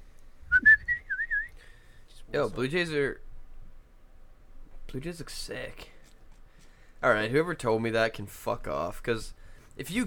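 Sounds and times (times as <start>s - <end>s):
person whistling an imitation of a cardinal call: 0.5s - 1.6s
speech: 2.3s - 3.3s, 4.9s - 5.9s, 7.0s - 10.0s.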